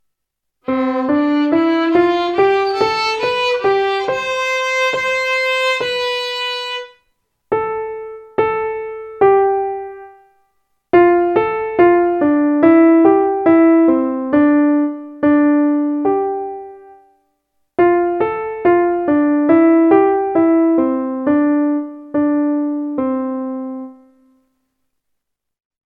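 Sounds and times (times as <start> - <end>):
piano: 0.0 - 25.2
violin: 0.7 - 7.0.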